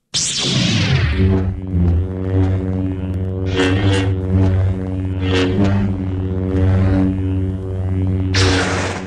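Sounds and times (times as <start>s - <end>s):
lightsaber sound effect with low buzzing hum: 0.0s - 9.0s.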